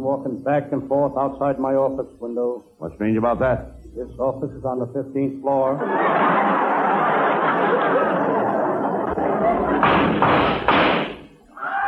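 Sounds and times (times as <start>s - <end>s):
speech: 0.0s - 7.1s, 9.2s - 11.1s
dense steady noise: 0.0s - 11.8s
laughter: 5.6s - 10.0s
loud gunshots outside an office: 9.8s - 11.2s.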